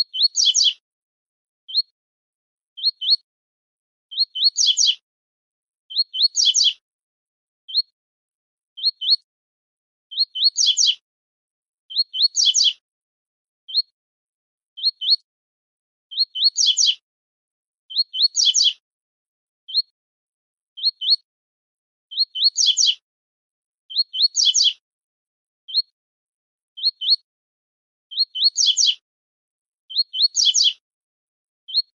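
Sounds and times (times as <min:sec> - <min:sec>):
double-collared seedeater tui-tui style tutor song: 0:00.1 - 0:00.8, 0:02.8 - 0:03.2, 0:04.1 - 0:05.0, 0:05.9 - 0:06.8, 0:08.8 - 0:09.2, 0:10.1 - 0:11.0, 0:11.9 - 0:12.8, 0:14.8 - 0:15.2, 0:16.1 - 0:17.0, 0:17.9 - 0:18.8, 0:20.8 - 0:21.2, 0:22.1 - 0:23.0, 0:23.9 - 0:24.8, 0:26.8 - 0:27.2, 0:28.1 - 0:29.0, 0:29.9 - 0:30.8.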